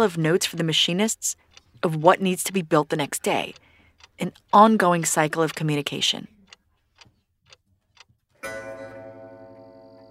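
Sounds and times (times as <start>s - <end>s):
speech: 0.0s - 6.4s
grandfather clock ticking slowly: 0.0s - 10.1s
grandfather clock chiming midnight: 8.4s - 10.1s.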